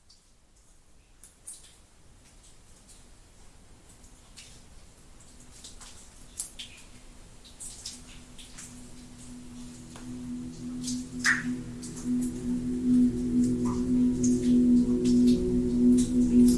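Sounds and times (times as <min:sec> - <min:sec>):
low steady ringing hum: 0:08.0 - 0:16.5
water drops plinking: 0:08.0 - 0:16.5.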